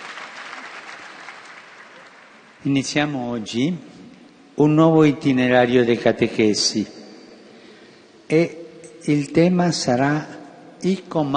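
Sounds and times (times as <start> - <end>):
audience applause at a catechesis gathering: 0.0 - 2.6
speech: 2.6 - 3.9, 4.6 - 7.0, 8.3 - 11.3.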